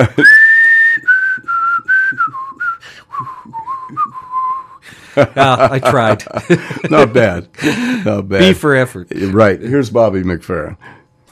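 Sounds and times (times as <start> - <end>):
speech: 0.0 - 0.4, 5.2 - 11.0
person whistling a short tune: 0.1 - 4.8
breathy airy noise under the whistle: 2.7 - 4.0, 4.6 - 5.4, 6.4 - 8.4
laughter: 5.2 - 8.2.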